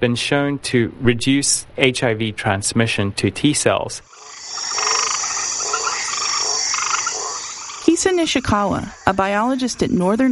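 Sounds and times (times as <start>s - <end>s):
speech: 0.0s - 4.2s, 8.0s - 10.3s
chorus of frogs croaking: 4.1s - 10.3s
steady high insect-like drone: 4.1s - 10.3s.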